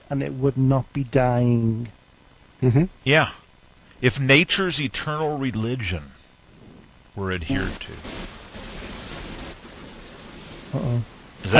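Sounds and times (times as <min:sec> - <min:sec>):
speech: 0:00.1 - 0:02.0, 0:02.6 - 0:03.4, 0:04.0 - 0:06.2, 0:07.2 - 0:08.4
broadband static hiss on a phone line: 0:04.0 - 0:11.5.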